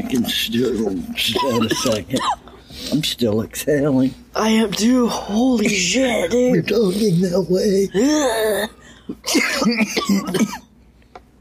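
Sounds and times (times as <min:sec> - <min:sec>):
speech: 0:00.1 - 0:10.6
person hacking coughs after inhaling cannabis smoke: 0:01.3 - 0:02.5, 0:08.0 - 0:10.7.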